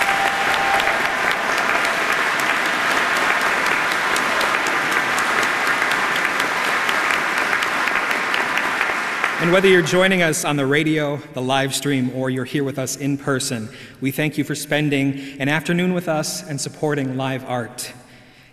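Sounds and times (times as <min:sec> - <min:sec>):
large audience clapping: 0:00.0 - 0:10.4
speech: 0:09.5 - 0:18.0.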